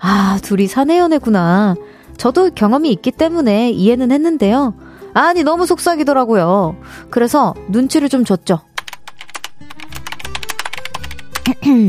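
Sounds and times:
speech: 0.0s - 8.7s, 11.6s - 11.8s
computer keyboard typing: 8.7s - 11.6s.

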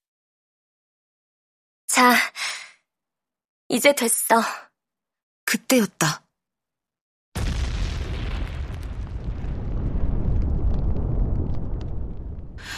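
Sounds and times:
speech: 1.9s - 2.6s, 3.7s - 4.7s, 5.5s - 6.2s
loud deep booming thuds and heavy rumble outside a school: 7.4s - 12.7s
small crackling bursts: 7.4s - 12.7s.

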